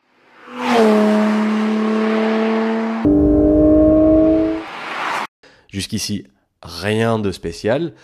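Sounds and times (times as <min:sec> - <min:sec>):
naturally aspirated flat-six sports car engine revving: 0:01.1 - 0:04.6
speech: 0:05.8 - 0:08.0.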